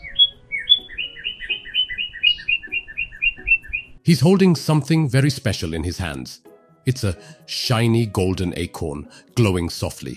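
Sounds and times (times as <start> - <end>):
small blue bird tweeting in quick chirps: 0.0 - 4.0
speech: 4.0 - 10.1.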